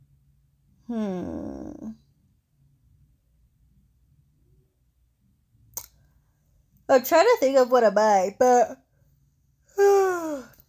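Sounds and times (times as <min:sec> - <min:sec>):
person yawning: 0:00.9 - 0:02.0, 0:09.8 - 0:10.6
speech: 0:00.9 - 0:02.0, 0:06.9 - 0:08.8.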